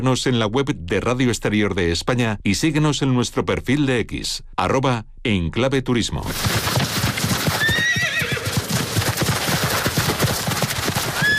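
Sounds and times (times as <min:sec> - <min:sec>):
speech: 0:00.0 - 0:06.8
horse hooves clip-clopping: 0:06.3 - 0:11.3
horse whinnying: 0:07.1 - 0:11.3.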